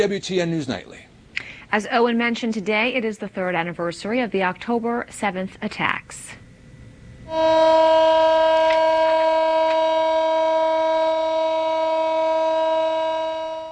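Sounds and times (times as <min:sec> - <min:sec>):
speech: 0:00.0 - 0:01.1, 0:01.7 - 0:06.4, 0:07.3 - 0:09.1
faint noise: 0:00.0 - 0:10.1
civil defense siren sounding for remembrance: 0:07.2 - 0:13.7.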